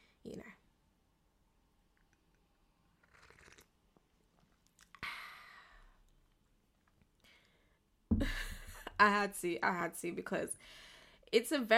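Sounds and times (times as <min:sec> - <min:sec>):
person sipping hot tea: 0:02.8 - 0:05.0
speech: 0:09.0 - 0:11.7.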